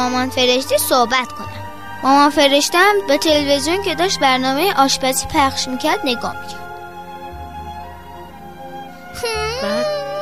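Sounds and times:
speech: 0.0 - 1.4, 2.0 - 6.6
child crying: 9.2 - 10.1.

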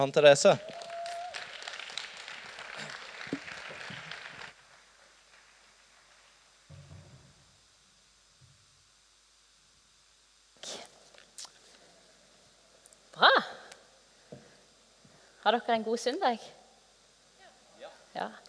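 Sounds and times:
speech: 0.0 - 0.8, 15.6 - 16.6, 18.2 - 18.4
audience applause welcoming a speaker: 0.0 - 6.5
knocks and thumps: 6.7 - 7.5.

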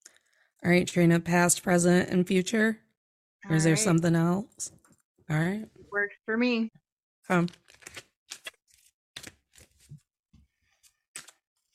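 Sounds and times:
speech: 0.6 - 2.8, 3.4 - 8.0
tarot cards being shuffled: 7.3 - 10.1, 10.7 - 11.7.

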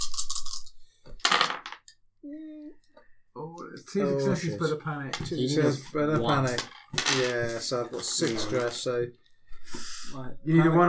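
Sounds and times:
small hard dice rattling across a table in a tabletop role-playing game: 0.0 - 2.0, 6.2 - 8.8
brief low hum from a voice: 2.2 - 2.9
speech: 3.8 - 10.8.

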